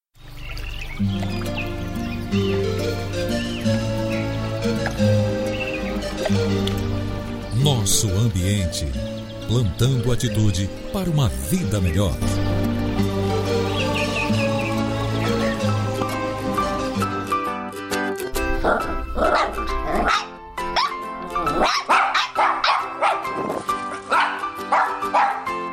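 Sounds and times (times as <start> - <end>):
soft music: 0.2 - 25.7
speech: 1.0 - 2.6, 7.6 - 13.6
puppy yapping and barking: 18.6 - 25.7.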